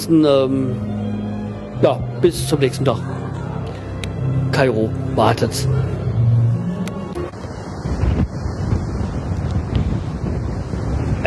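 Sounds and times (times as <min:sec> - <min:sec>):
speech: 0:00.0 - 0:01.0, 0:01.8 - 0:03.2, 0:04.5 - 0:06.0
ocean waves surging heard from balcony: 0:00.0 - 0:11.2
gusts of wind buffeting the microphone: 0:06.5 - 0:11.2.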